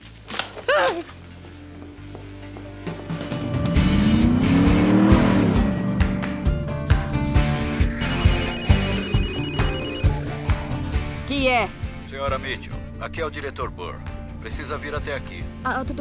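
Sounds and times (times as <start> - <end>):
speech: 0.8 - 1.2, 11.6 - 15.9
car engine revving: 3.2 - 9.1
telephone ringing: 8.0 - 10.4.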